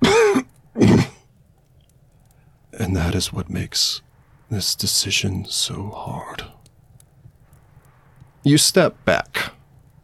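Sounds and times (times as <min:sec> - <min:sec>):
rough wet coughs: 0:00.0 - 0:01.2
speech: 0:02.8 - 0:06.6, 0:08.4 - 0:09.6.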